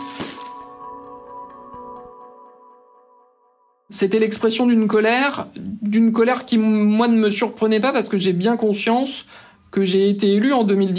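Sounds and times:
firework cracking outdoors at an abandoned swimming pool: 0.0 - 0.8
speech: 3.9 - 10.9.

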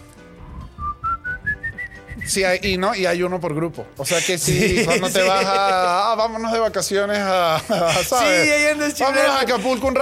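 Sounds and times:
person whistling clear sustained notes: 0.4 - 2.4
speech: 2.2 - 9.9
laughter: 4.1 - 9.9.

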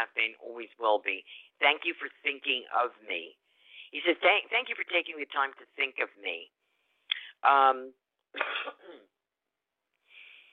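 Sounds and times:
speech: 0.0 - 6.6, 7.4 - 9.1
person clearing throat: 8.4 - 9.1.

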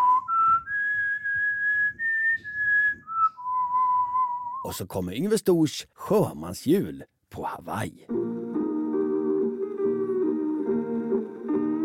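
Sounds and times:
whistled melody from a Christmas record: 0.0 - 4.8, 8.1 - 11.8
speech: 4.6 - 8.3
soft low instrumental backing: 8.1 - 11.8.

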